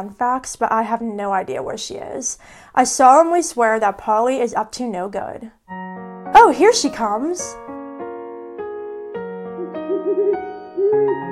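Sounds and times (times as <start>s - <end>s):
speech: 0.0s - 7.7s
owl hooting in wavering tones: 9.6s - 11.3s.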